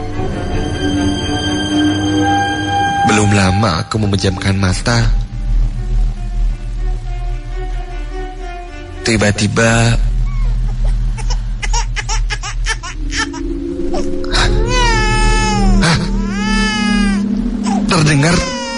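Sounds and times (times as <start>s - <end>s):
low steady drone: 0.0s - 18.7s
speech: 3.3s - 5.2s, 9.0s - 10.1s, 17.9s - 18.5s
baby crying at night: 10.2s - 18.7s.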